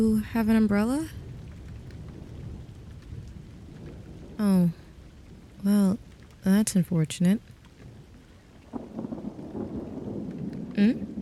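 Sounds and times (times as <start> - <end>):
speech: 0.0 - 1.2, 4.4 - 4.8, 5.6 - 7.6, 10.8 - 11.1
heavy rain: 0.0 - 11.2.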